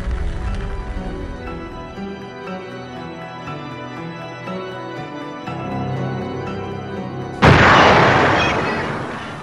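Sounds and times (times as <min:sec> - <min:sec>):
low tense rumble: 0:00.0 - 0:02.2
loud crackling ship explosion: 0:07.4 - 0:09.4.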